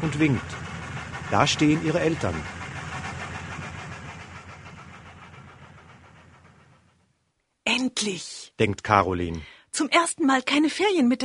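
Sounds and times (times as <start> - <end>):
speech: 0.0 - 0.7, 1.3 - 2.6, 8.0 - 11.2
train engine rumble pulling out of Stuttgart main station: 0.0 - 7.2.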